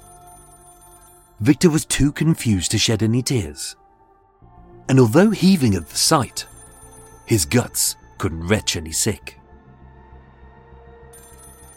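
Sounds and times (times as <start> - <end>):
telephone bell ringing: 0.0 - 1.4, 5.2 - 8.0, 11.2 - 11.7
speech: 1.4 - 3.8, 4.9 - 6.5, 7.3 - 9.4.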